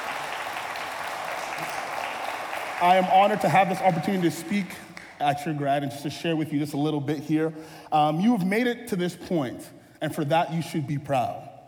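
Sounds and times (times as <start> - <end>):
audience applause: 0.0 - 5.2
speech: 2.8 - 11.4.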